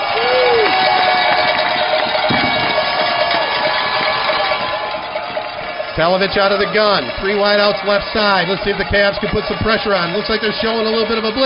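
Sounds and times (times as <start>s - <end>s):
large American football stadium crowd roaring and cheering: 0.0s - 11.4s
noisemakers clanging in a football stadium crowd: 0.0s - 11.4s
speech: 6.0s - 11.4s.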